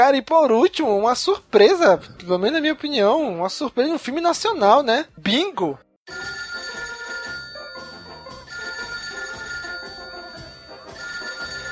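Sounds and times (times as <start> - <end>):
speech: 0.0 - 6.2
telephone ringing with a bright tonal ringtone: 6.1 - 11.7.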